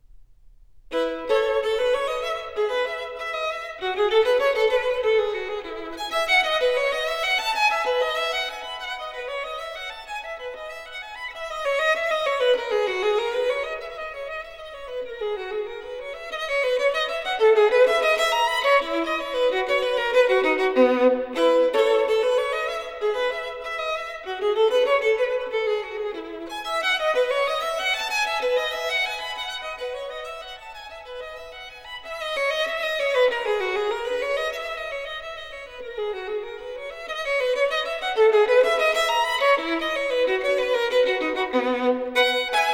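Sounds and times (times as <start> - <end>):
solo violin in E major: 0.8 - 42.7.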